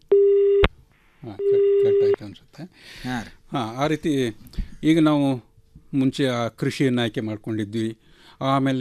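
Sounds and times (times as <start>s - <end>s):
telephone line tone of an incoming phone-in call: 0.1s - 0.7s
speech: 2.8s - 8.7s.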